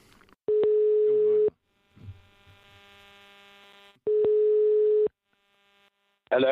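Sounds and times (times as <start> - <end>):
electronic ringback tones of an outgoing phone call: 0.5 - 1.5, 4.0 - 5.1
speech: 6.3 - 6.5.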